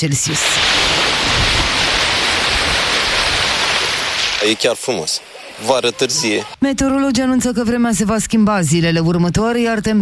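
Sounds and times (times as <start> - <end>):
speech: 0.0 - 1.1, 4.4 - 10.0
sea waves breaking along a beach: 0.2 - 6.6
wind rumble: 0.5 - 4.4.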